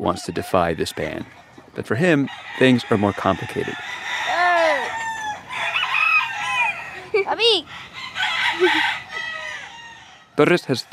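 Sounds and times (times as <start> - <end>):
speech: 0.0 - 4.0, 7.2 - 7.9, 8.6 - 9.0, 10.4 - 10.9
chickens clucking and squawking in a crowded pen: 0.0 - 10.9
roosters crowing in cages: 0.1 - 10.9.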